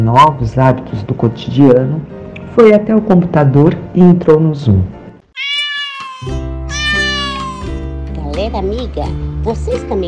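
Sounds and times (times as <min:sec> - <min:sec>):
speech: 0:00.0 - 0:05.5, 0:08.4 - 0:10.0
cat meowing: 0:05.3 - 0:07.8.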